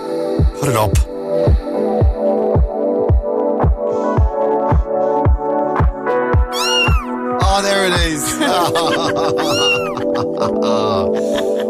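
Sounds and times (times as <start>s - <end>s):
speech: 0.6s - 1.6s, 8.1s - 9.8s, 10.4s - 11.4s
loud music with a steady thumping beat: 1.5s - 7.1s
cat meowing: 6.5s - 7.1s, 9.4s - 10.0s
laughter: 8.2s - 11.6s.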